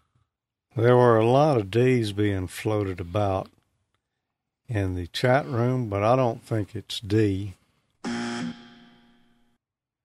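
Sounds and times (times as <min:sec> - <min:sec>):
speech: 0:00.8 - 0:03.6, 0:04.7 - 0:08.2
quiz wrong-answer buzzer: 0:08.0 - 0:09.1.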